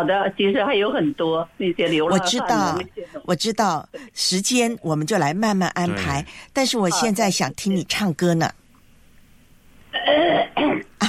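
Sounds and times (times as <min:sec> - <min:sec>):
speech: 0:00.0 - 0:08.6
person clearing throat before singing: 0:05.9 - 0:06.3, 0:10.0 - 0:11.0.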